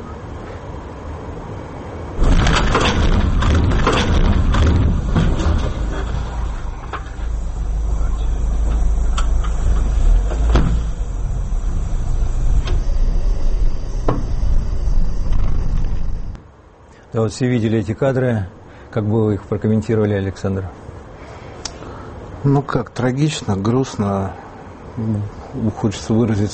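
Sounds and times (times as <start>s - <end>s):
car engine and road rumble inside a moving vehicle: 0.0s - 26.5s
sharp knocks and thuds: 2.2s - 7.1s, 10.2s - 11.0s
speech: 17.2s - 20.8s, 22.4s - 24.4s, 25.0s - 26.5s.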